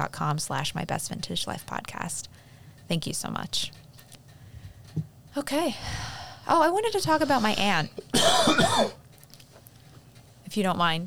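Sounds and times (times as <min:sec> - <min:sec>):
speech: 0:00.0 - 0:03.8, 0:05.0 - 0:09.0, 0:10.6 - 0:11.0
single short rough voiced cough: 0:07.0 - 0:09.0.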